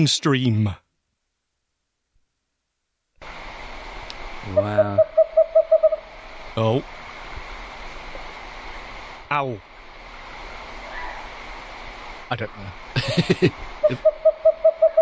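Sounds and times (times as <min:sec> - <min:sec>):
speech: 0:00.0 - 0:00.8, 0:04.4 - 0:05.0, 0:06.6 - 0:06.9, 0:09.3 - 0:09.7, 0:12.3 - 0:14.2
owl hooting: 0:04.4 - 0:06.2, 0:10.8 - 0:11.4, 0:13.8 - 0:15.0
laughter: 0:13.0 - 0:14.1.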